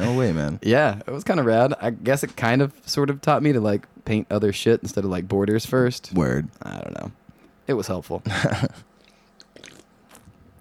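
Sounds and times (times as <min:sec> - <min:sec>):
speech: 0:00.2 - 0:08.9
person sipping beer: 0:09.0 - 0:10.4
soft wet mouth and swallowing noises: 0:09.0 - 0:10.6.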